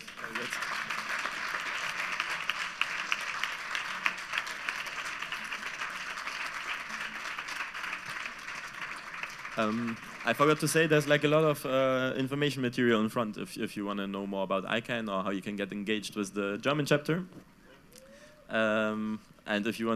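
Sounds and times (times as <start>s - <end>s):
audience applause: 0.0s - 11.6s
speech: 9.6s - 17.5s, 18.5s - 19.9s.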